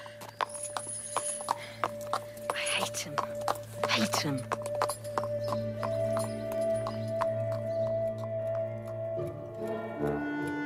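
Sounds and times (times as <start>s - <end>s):
horse hooves clip-clopping at a walk: 0.0s - 10.6s
speech: 3.0s - 3.3s, 4.0s - 4.5s.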